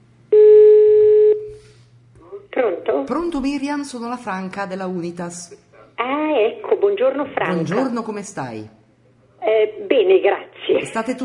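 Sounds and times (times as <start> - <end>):
telephone ringback tone while calling someone: 0.3 - 1.4
speech: 2.6 - 8.8, 9.5 - 11.2.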